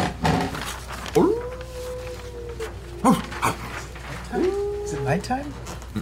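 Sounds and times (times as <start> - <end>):
faint noise: 0.0 - 6.0
speech: 1.2 - 1.4, 3.0 - 3.6, 5.1 - 5.7
person's voice imitating howling of a wolf pack: 1.2 - 5.5.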